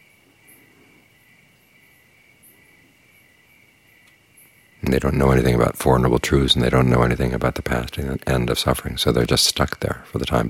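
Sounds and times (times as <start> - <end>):
crickets trilling outdoors: 0.0 - 10.4
faint chirps of other insects or birds: 0.0 - 10.4
speech: 4.8 - 10.4.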